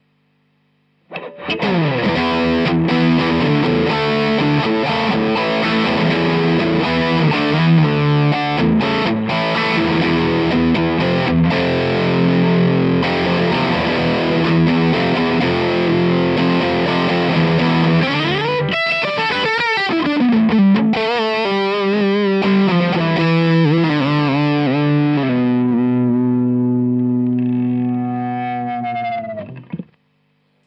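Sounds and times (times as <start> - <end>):
overdriven Stratocaster electric guitar: 1.0 - 30.6.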